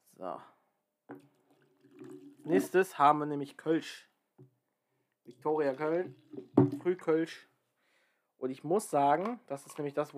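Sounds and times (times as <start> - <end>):
speech: 0.2 - 1.3, 2.5 - 4.1, 5.3 - 7.5, 8.4 - 10.1
water pouring into a glass: 1.1 - 3.7, 5.3 - 7.4.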